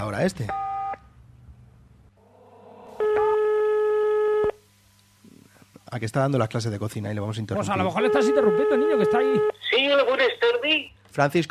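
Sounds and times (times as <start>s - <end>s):
speech: 0.0s - 0.6s, 5.9s - 11.4s
telephone line tone while a call is being placed: 3.0s - 4.6s, 8.0s - 9.6s.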